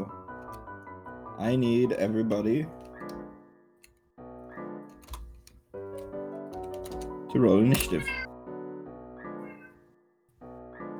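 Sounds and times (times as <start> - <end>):
speech: 1.4 - 2.8, 7.3 - 8.2
cat meowing in a drawn-out crying way: 9.4 - 9.8.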